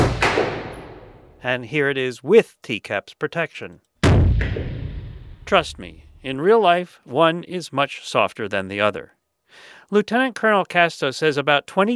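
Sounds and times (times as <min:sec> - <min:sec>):
M4 rifle gunshot fired without hearing protection: 0:00.0 - 0:01.3, 0:04.0 - 0:05.4
speech: 0:01.4 - 0:04.6, 0:05.5 - 0:11.9.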